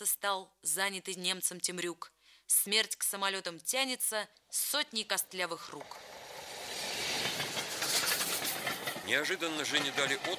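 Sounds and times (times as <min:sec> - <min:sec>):
speech: 0:00.0 - 0:06.2, 0:09.1 - 0:10.3
passenger train rolling along the rails on a journey to Moscow: 0:05.7 - 0:10.3.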